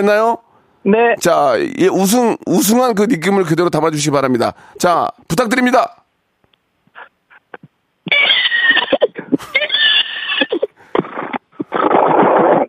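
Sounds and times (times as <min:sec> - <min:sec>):
speech: 0:00.0 - 0:06.0
person imitating a horse whinny: 0:08.1 - 0:12.6.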